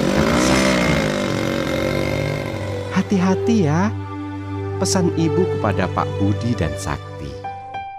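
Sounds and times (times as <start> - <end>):
motorcycle engine setting off carrying two riders: 0.0 - 3.7
speech: 3.1 - 4.0, 4.8 - 7.1.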